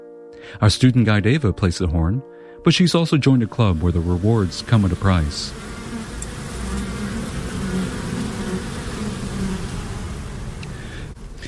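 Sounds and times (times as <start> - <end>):
speech: 0.5 - 5.7
honeybees buzzing at a school beekeeping site: 3.3 - 11.4.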